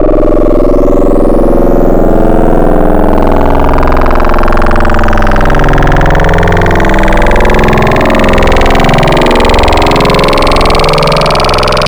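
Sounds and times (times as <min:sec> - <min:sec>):
AM sine wavetable synth: 0:00.0 - 0:11.8.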